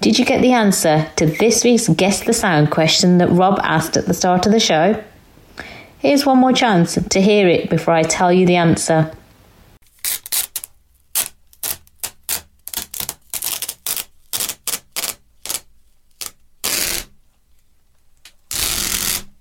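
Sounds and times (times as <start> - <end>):
speech: 0.0 - 9.2
sticky tape pulled off a roll: 9.8 - 17.2, 18.2 - 19.4.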